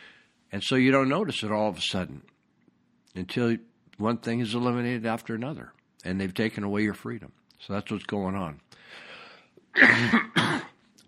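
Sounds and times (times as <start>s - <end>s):
speech: 0.5s - 2.3s, 3.2s - 9.0s, 9.8s - 10.7s
person coughing harshly: 9.7s - 10.8s.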